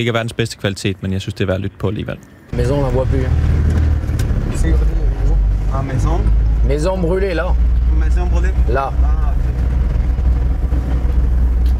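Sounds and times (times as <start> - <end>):
speech: 0.0 - 3.8, 4.6 - 5.0, 5.7 - 9.7
car engine and road drone driving past burned houses: 2.5 - 11.7.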